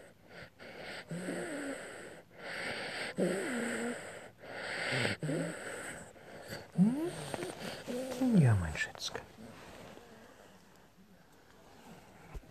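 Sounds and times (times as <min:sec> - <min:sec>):
old ailing pet animal snorting and wheezing: 0:00.0 - 0:08.4.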